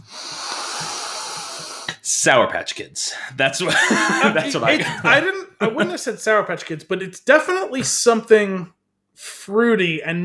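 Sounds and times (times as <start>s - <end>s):
long steady inhaling sniff of beer in a glass: 0.0s - 2.0s
speech: 2.2s - 10.2s
laughter: 3.6s - 6.2s.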